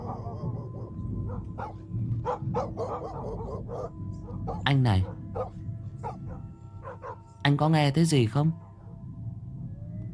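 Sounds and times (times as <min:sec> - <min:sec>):
white dog barking while running alongside a bicycle: 0:00.0 - 0:07.2
steady low rumble: 0:00.0 - 0:10.1
speech: 0:04.7 - 0:05.2, 0:07.5 - 0:08.6.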